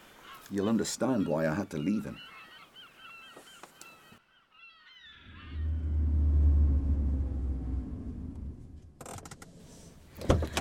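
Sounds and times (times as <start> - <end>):
speech: 0.5 - 2.4
car drawing up and stopping with deep engine rumble: 5.3 - 10.0.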